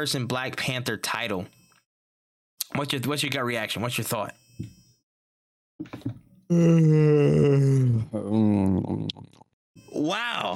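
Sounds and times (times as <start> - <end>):
speech: 0.0 - 1.6, 2.7 - 4.8, 5.8 - 10.5
person yawning: 6.5 - 9.2.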